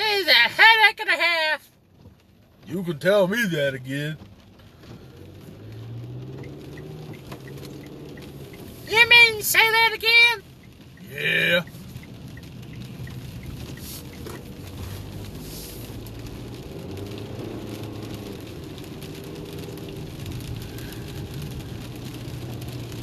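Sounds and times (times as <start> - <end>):
car engine revving and sputtering: 0.0 - 23.0
speech: 2.7 - 4.3, 8.9 - 10.5, 11.1 - 11.8.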